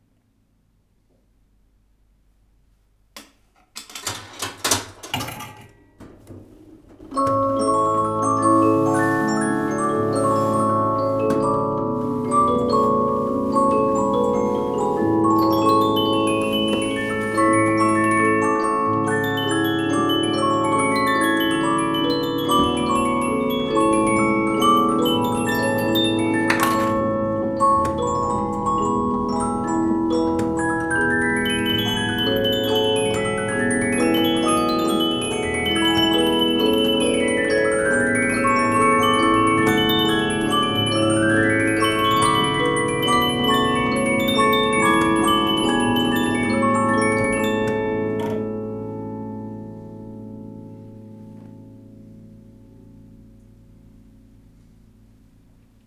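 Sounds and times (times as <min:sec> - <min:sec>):
coin-operated polyphonic metal disc music box from Leipzig: 0:07.1 - 0:50.1.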